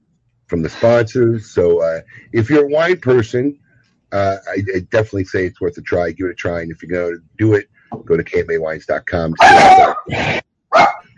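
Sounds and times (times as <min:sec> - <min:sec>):
speech: 0:00.5 - 0:10.9
dog barking: 0:09.4 - 0:11.1.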